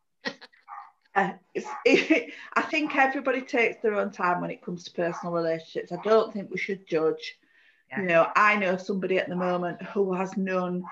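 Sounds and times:
dogs barking at arriving postman: 0:00.6 - 0:01.0, 0:01.6 - 0:02.1, 0:05.0 - 0:06.3, 0:10.8 - 0:10.9
speech: 0:01.2 - 0:10.9.

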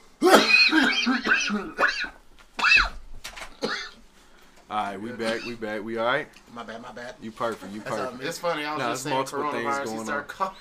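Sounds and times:
person coughing in short rough bursts: 0:00.2 - 0:03.0, 0:03.6 - 0:04.0
speech: 0:01.1 - 0:01.8, 0:04.7 - 0:10.6.

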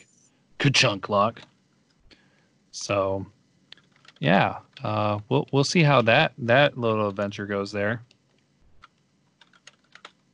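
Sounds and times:
speech: 0:00.6 - 0:01.5, 0:02.8 - 0:03.4, 0:04.2 - 0:08.1
typing on a computer keyboard: 0:03.8 - 0:04.9, 0:07.0 - 0:07.3, 0:08.8 - 0:10.2.

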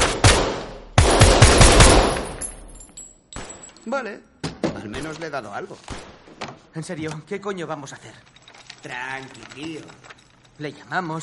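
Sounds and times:
gunshots at a shooting gallery: 0:00.0 - 0:02.4, 0:05.9 - 0:06.4
speech: 0:03.9 - 0:06.1, 0:06.8 - 0:11.2.

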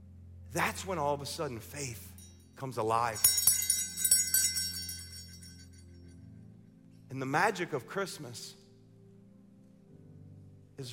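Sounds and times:
speech: 0:00.5 - 0:03.4, 0:07.1 - 0:08.6
small bell ringing: 0:03.0 - 0:05.9.

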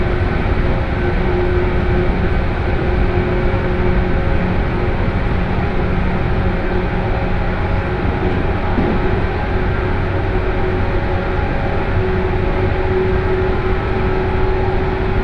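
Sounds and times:
local train 117 series motors and running gear roaring in a tunnel: 0:00.0 - 0:15.2.

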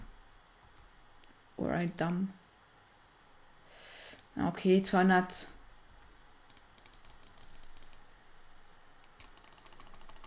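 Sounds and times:
speech: 0:01.7 - 0:02.4, 0:04.4 - 0:05.6
computer mouse clicking: 0:05.9 - 0:08.0, 0:09.0 - 0:10.2.

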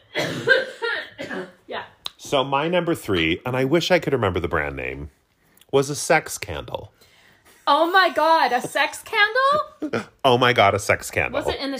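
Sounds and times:
person coughing harshly: 0:00.0 - 0:01.6
speech: 0:02.3 - 0:07.1, 0:07.7 - 0:11.7.

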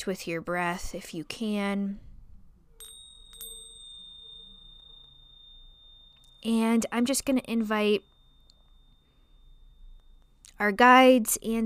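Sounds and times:
speech: 0:00.0 - 0:02.1, 0:06.4 - 0:08.1, 0:10.6 - 0:11.6
low hum: 0:00.0 - 0:11.6
hand bells ringing: 0:02.8 - 0:11.6.

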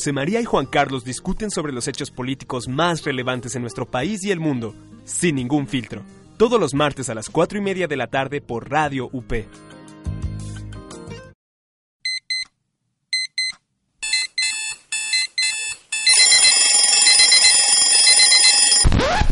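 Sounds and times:
speech: 0:00.0 - 0:10.2
alarm clock ringing: 0:14.0 - 0:18.8.

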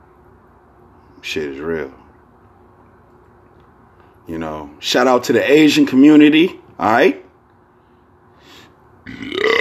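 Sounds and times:
speech: 0:01.2 - 0:02.0, 0:04.3 - 0:07.2
loud burp: 0:09.0 - 0:09.5.

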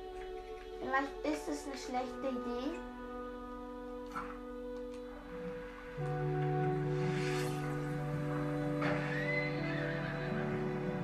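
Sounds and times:
steady tonal drone: 0:00.0 - 0:11.0
speech: 0:00.8 - 0:03.0, 0:06.0 - 0:06.4
startled horse neighing: 0:08.4 - 0:11.0.

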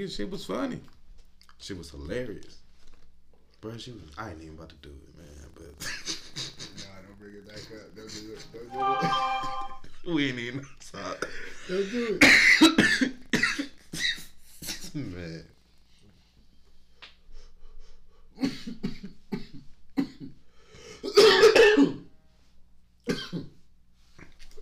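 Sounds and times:
speech: 0:00.0 - 0:01.0, 0:01.6 - 0:02.6, 0:03.6 - 0:06.2, 0:07.2 - 0:13.2, 0:14.9 - 0:15.5
harsh repeated coughing in fits: 0:12.2 - 0:15.0, 0:21.0 - 0:22.0, 0:23.1 - 0:23.6.

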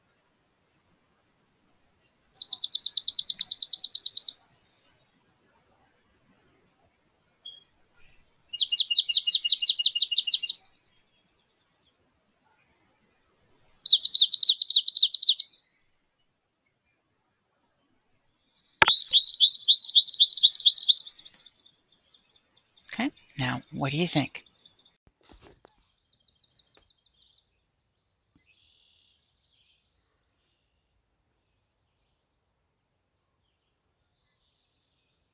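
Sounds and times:
high rapid trilling birdsong: 0:02.4 - 0:04.4, 0:08.5 - 0:10.6, 0:13.8 - 0:15.5, 0:18.6 - 0:25.0
speech: 0:23.0 - 0:24.4.

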